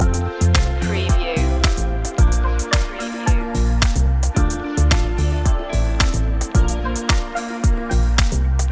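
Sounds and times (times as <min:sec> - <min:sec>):
summer fashion house music loop: 0:00.0 - 0:08.7.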